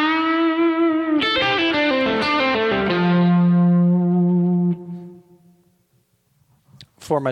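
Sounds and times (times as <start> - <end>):
distorted electric guitar phrase played legato with pull-offs through a profiling amplifier: 0.0 - 5.6.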